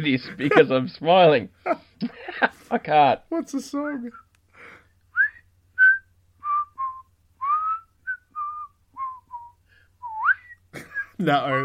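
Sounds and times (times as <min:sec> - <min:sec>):
speech: 0:00.0 - 0:04.2, 0:11.2 - 0:11.6
person whistling a melody from a 1968 song: 0:05.2 - 0:10.6.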